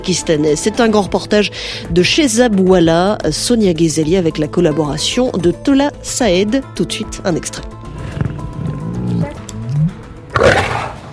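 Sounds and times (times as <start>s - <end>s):
speech: 0.0s - 7.8s
lion roaring in a cage: 7.9s - 11.1s.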